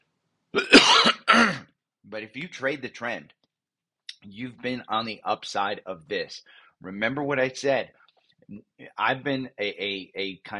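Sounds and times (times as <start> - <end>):
throat clearing: 0.6 - 1.7
speech: 2.1 - 3.4, 4.2 - 10.5.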